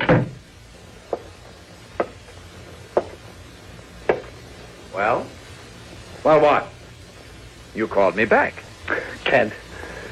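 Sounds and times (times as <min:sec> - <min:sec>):
door shutting with a heavy thud: 0:00.0 - 0:00.4
speech: 0:05.0 - 0:05.4, 0:06.2 - 0:06.7, 0:07.7 - 0:08.7, 0:09.3 - 0:09.6.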